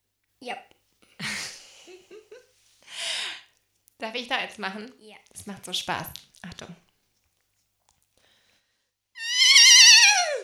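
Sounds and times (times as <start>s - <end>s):
speech: 0.4s - 0.7s, 4.0s - 6.9s
human voice imitating a horse whinny: 9.2s - 10.4s.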